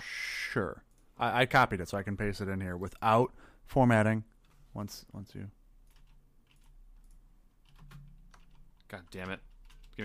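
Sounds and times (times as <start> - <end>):
speech: 0.5 - 5.6, 8.9 - 10.0
typing on a computer keyboard: 5.8 - 10.0.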